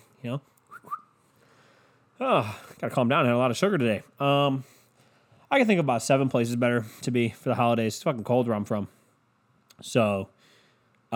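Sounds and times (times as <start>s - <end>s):
quiet hiss: 0.0s - 11.1s
speech: 0.2s - 1.0s, 2.2s - 4.8s, 5.5s - 9.0s, 9.8s - 10.4s
short soft whistle of two quick rising notes: 0.7s - 1.2s.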